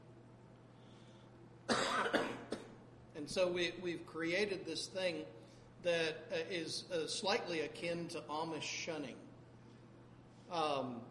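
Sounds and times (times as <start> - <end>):
harsh cough: 1.7 - 2.8
speech: 3.2 - 9.3, 10.5 - 11.1.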